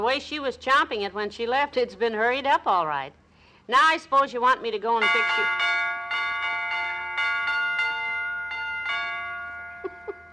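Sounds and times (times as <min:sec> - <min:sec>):
speech: 0:00.0 - 0:05.8
broken doorbell chiming a short tune: 0:05.0 - 0:10.3.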